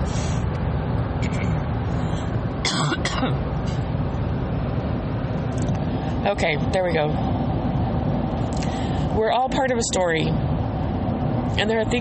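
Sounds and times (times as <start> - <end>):
steady low rumble: 0.0 - 12.0
person clearing throat: 2.7 - 3.4
speech: 6.3 - 7.4, 9.2 - 10.5, 11.5 - 12.0.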